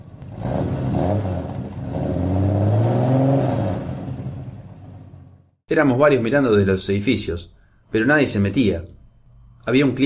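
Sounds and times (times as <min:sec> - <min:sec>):
car engine revving and driving away at night: 0:00.0 - 0:05.4
speech: 0:05.7 - 0:09.0, 0:09.6 - 0:10.0.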